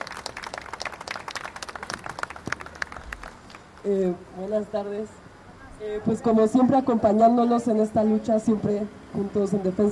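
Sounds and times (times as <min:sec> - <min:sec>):
audience applause: 0:00.0 - 0:03.6
speech: 0:03.8 - 0:05.2, 0:05.8 - 0:09.9.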